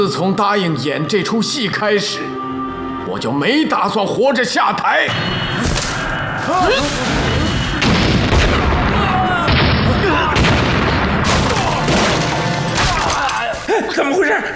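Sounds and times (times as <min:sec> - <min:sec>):
speech: 0:00.0 - 0:05.8, 0:06.4 - 0:07.4, 0:13.8 - 0:14.5
people shouting faintly: 0:06.4 - 0:07.3, 0:08.5 - 0:12.2
rumbling debris: 0:06.7 - 0:13.5
heavy booms and crashing blasts of explosions: 0:06.8 - 0:12.8.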